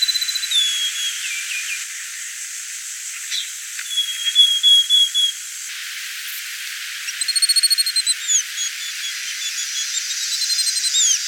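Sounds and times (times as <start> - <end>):
Pachyramphus cinnamomeus cinnamon becard calling: 0.1 - 1.3, 3.3 - 5.3, 7.1 - 11.1.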